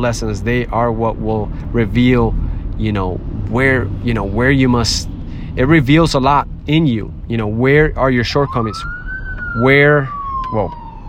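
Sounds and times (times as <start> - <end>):
speech: 0.0 - 10.8
ambulance siren wailing as it passes: 8.2 - 11.0.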